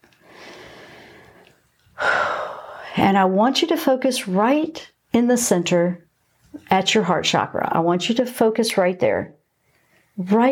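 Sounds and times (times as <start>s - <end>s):
slow deep breath in and out: 0.1s - 3.0s
speech: 3.0s - 9.4s, 10.2s - 10.5s.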